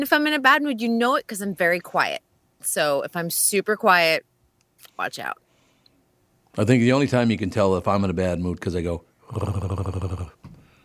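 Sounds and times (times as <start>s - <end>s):
speech: 0.0s - 4.3s, 4.9s - 5.4s, 6.6s - 10.2s
person voicing a low rumbling dog-like growl: 9.3s - 10.4s.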